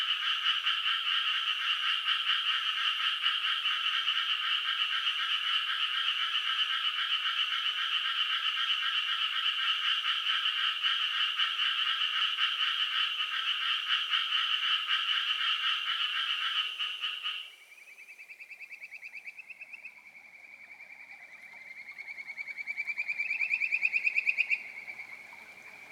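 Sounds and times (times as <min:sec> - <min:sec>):
several frogs croaking in chorus: 0:00.0 - 0:25.8.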